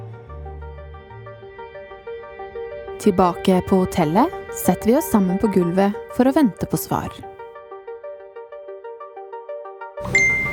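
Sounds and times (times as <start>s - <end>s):
speech: 3.0s - 7.3s
phone message notification chime: 10.0s - 10.5s.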